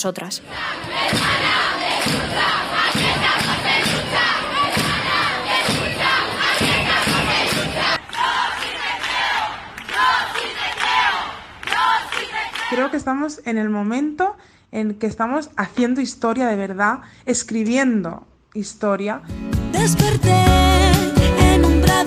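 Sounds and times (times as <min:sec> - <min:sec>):
speech: 0:00.0 - 0:04.3, 0:12.7 - 0:21.1
large protest street crowd chanting slogans in unison: 0:00.4 - 0:13.0.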